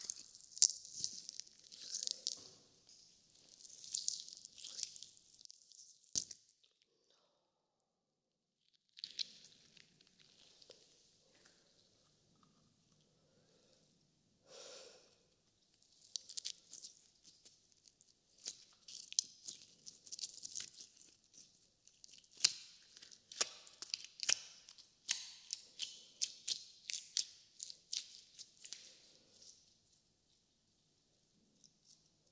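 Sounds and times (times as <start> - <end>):
slime squishing: 0.0 - 7.0, 8.7 - 12.5, 15.7 - 29.7.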